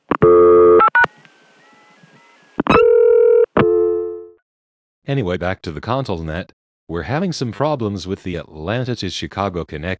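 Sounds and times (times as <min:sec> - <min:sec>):
telephone tones while dialing from a local dial tone to an outgoing trunk: 0:00.2 - 0:01.1, 0:02.6 - 0:04.1
speech: 0:05.1 - 0:09.9.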